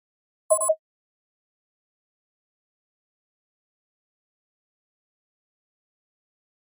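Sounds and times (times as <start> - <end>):
hollow electronic flash beep: 0.5 - 0.8.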